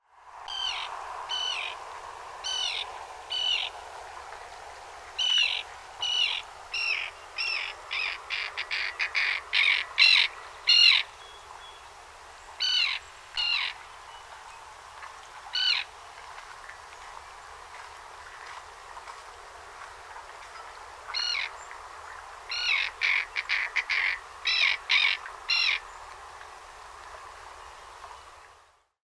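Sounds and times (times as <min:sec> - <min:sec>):
common tern: 0:00.4 - 0:28.6.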